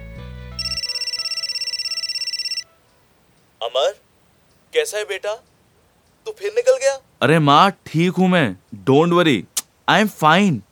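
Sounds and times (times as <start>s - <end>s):
mobile phone ringing with incoming call at a roadside dhaba: 0.6s - 2.7s
speech: 3.6s - 4.0s, 4.7s - 5.5s, 6.2s - 10.7s.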